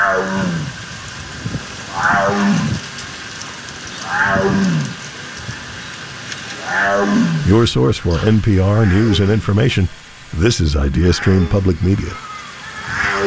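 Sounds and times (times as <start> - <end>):
Sumatran tiger roaring: 0.0 - 0.8, 1.9 - 2.9, 4.0 - 5.0, 6.6 - 12.2
steady hiss of noise: 0.0 - 13.2
speech: 7.5 - 12.3.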